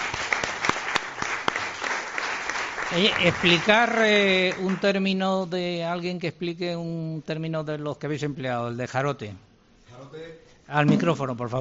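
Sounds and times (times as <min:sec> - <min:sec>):
crowd of people applauding in Villanueva de Córdoba: 0:00.0 - 0:05.0
speech: 0:02.9 - 0:11.5.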